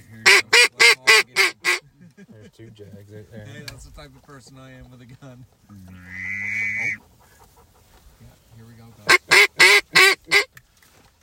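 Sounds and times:
flock of ducks quacking: 0.1s - 1.8s, 5.9s - 8.0s, 9.0s - 10.5s
speech: 2.6s - 7.0s.

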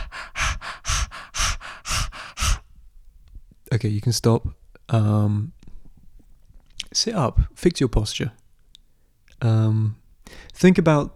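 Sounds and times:
rapid heavy open-mouth breathing: 0.0s - 2.7s
speech: 3.7s - 5.6s, 7.0s - 8.4s, 9.4s - 10.0s, 10.6s - 11.1s.

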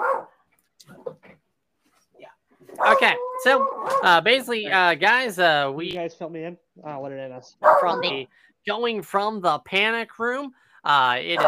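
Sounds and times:
dog barking: 0.0s - 0.4s, 2.7s - 4.1s, 7.6s - 8.2s
speech: 2.8s - 11.4s.

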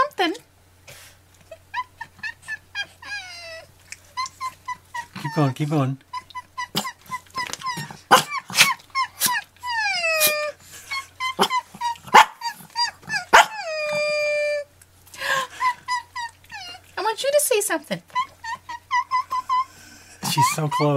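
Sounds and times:
dog whining howls sliding downward in pitch: 1.7s - 14.7s, 15.4s - 17.0s, 18.1s - 20.9s
speech: 5.4s - 6.1s
dog barking: 8.1s - 8.8s, 11.4s - 12.4s, 13.3s - 13.6s.

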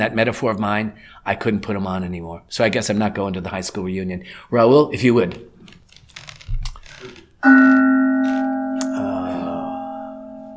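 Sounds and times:
speech: 0.0s - 5.8s, 7.0s - 8.4s
mindfulness bell struck once and ringing: 7.4s - 10.5s.

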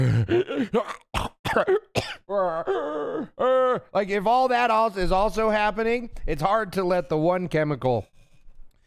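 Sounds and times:
speech: 0.0s - 1.8s, 3.8s - 8.2s
raspy throat clearing after choking: 0.0s - 3.8s
person coughing after choking: 0.0s - 4.0s.

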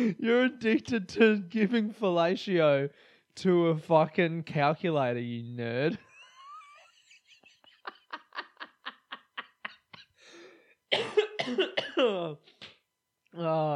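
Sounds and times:
speech: 0.0s - 6.0s, 10.9s - 12.5s, 13.3s - 13.7s
person coughing in a rasping fit of hacking: 10.9s - 12.3s.

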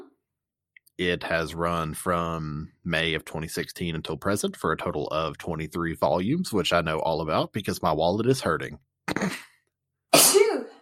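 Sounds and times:
speech: 1.0s - 9.5s
person sneezing: 9.1s - 10.7s.

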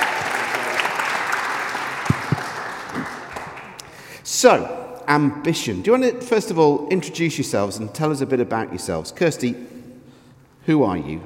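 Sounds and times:
audience at a church service applauding for a birthday: 0.0s - 3.8s
speech: 4.4s - 9.8s, 10.6s - 11.2s.

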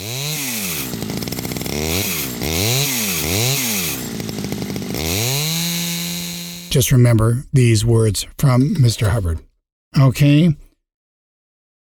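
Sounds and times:
chainsaw engine revving: 0.0s - 6.8s
speech: 6.8s - 10.6s.

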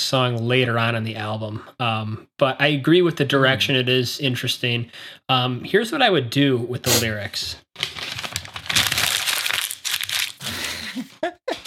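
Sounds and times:
speech: 0.1s - 8.0s
paper being crumpled: 7.8s - 10.6s.

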